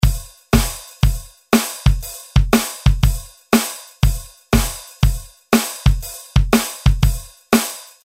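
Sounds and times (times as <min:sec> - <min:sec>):
Roland R-8 drum machine: 0:00.0 - 0:08.0.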